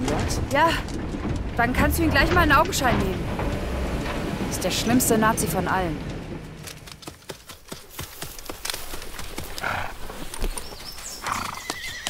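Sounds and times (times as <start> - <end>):
horses clopping their hooves at a stud farm: 0.0 - 12.0
speech: 0.1 - 3.5, 4.5 - 6.1
horses whinnying at a stud farm: 11.2 - 12.0.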